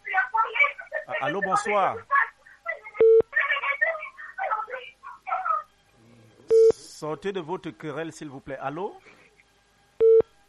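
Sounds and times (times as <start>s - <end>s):
people talking indistinctly: 0.0s - 9.1s
speech: 1.2s - 2.1s, 7.0s - 9.2s
telephone keypad beep during an on-air call: 3.0s - 3.2s, 10.0s - 10.2s.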